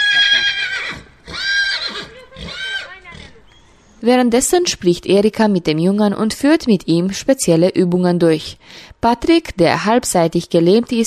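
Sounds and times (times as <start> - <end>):
therapy horse whinnying: 0.0 - 4.0
speech: 4.0 - 11.0.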